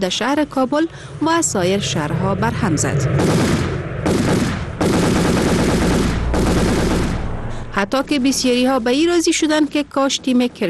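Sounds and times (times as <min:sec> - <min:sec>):
speech: 0:00.0 - 0:04.4, 0:07.8 - 0:10.6
celebratory machine gun fire: 0:03.2 - 0:07.4.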